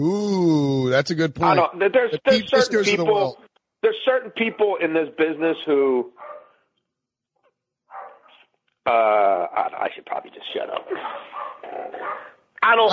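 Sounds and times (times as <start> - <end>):
speech: 0.9 - 6.2, 8.8 - 12.9
dog barking excitedly: 6.2 - 6.5, 7.9 - 8.4, 11.0 - 12.4.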